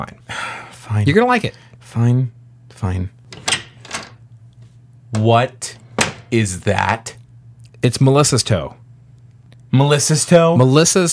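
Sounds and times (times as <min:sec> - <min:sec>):
speech: 0:00.0 - 0:03.2, 0:05.1 - 0:07.2, 0:07.8 - 0:08.8, 0:09.7 - 0:11.1
steady low hum: 0:00.0 - 0:11.1
door being opened with scraping latch: 0:03.3 - 0:04.2, 0:05.2 - 0:06.4.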